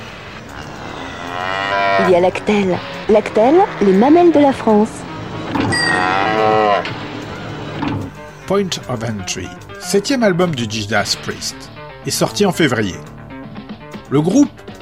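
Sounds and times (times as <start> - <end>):
cow mooing: 0.4 - 4.7, 5.6 - 7.6
speech: 2.1 - 5.6, 8.5 - 13.1, 14.1 - 14.6.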